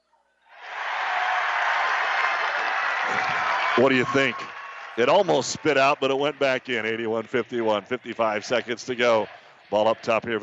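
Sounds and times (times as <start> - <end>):
arena crowd at a basketball game cheering and applauding after a made free throw: 0.5 - 10.4
speech: 3.8 - 10.4.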